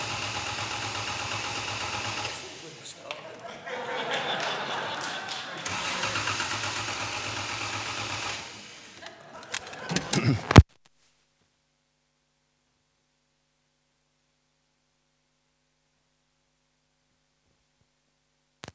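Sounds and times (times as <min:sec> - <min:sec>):
2.5-liter fuel-injected straight-six car engine cranking and idling: 0:00.0 - 0:03.0, 0:05.6 - 0:10.2
laughter: 0:02.2 - 0:06.7, 0:08.4 - 0:10.6.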